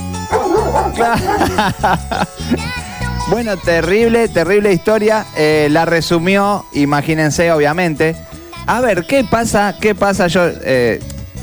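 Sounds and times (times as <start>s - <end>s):
dogs barking: 0.0s - 2.4s
laughter: 0.3s - 3.2s
speech: 0.8s - 11.1s.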